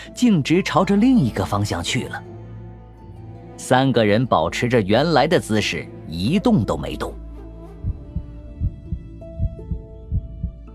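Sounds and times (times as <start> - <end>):
speech: 0.0 - 2.3, 3.6 - 7.2
heartbeat thumping: 7.6 - 10.7.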